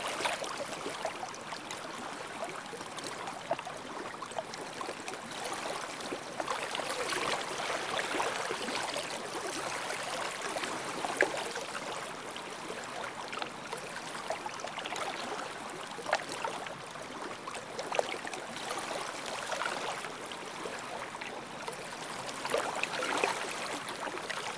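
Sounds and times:
ambient water: 0.0 - 24.5.

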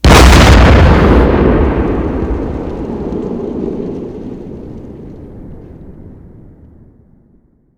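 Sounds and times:
artillery fire: 0.0 - 6.6.

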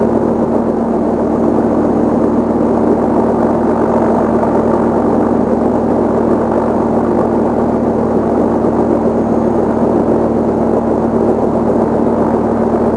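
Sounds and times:
helicopter engine without tail rotor: 0.0 - 12.9.

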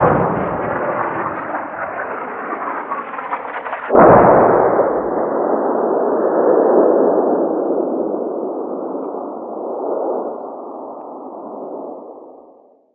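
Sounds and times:
medium artillery fire: 0.0 - 8.7.

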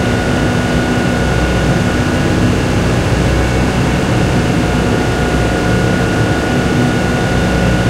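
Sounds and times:
Hetzer tank engine running, interior: 0.0 - 7.8.

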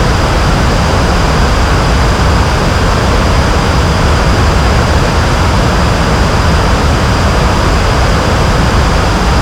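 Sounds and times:
jet aircraft engines: 0.0 - 9.4.

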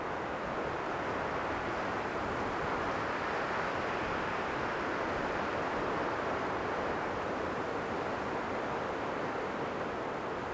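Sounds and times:
wind: 0.0 - 10.5.

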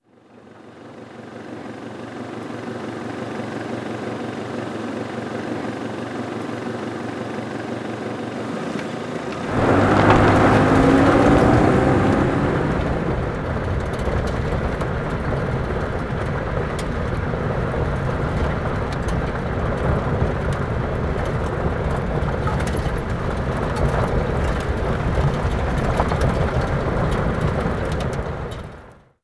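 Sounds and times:
car moving: 7.5 - 28.9.

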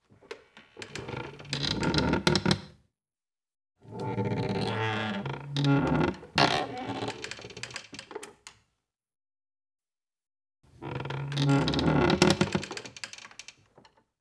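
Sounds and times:
heavy wood creak: 0.8 - 2.7, 3.9 - 7.5, 10.8 - 12.8.

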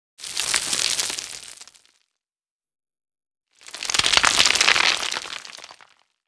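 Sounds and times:
rock rubble: 0.2 - 2.0, 3.6 - 6.2.

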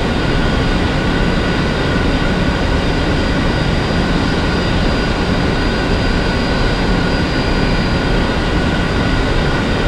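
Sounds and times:
MiG-29 aircraft engine heard from inside: 0.0 - 9.8.

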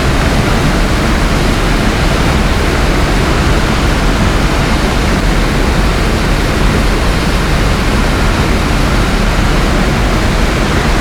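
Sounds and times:
Bf-109K-4 plane wind noise: 0.0 - 11.0.

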